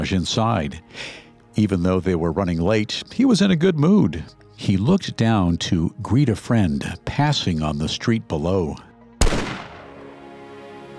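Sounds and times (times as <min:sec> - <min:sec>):
speech: 0:00.0 - 0:09.6
single loud rifle gunshot with long decay: 0:09.2 - 0:10.1.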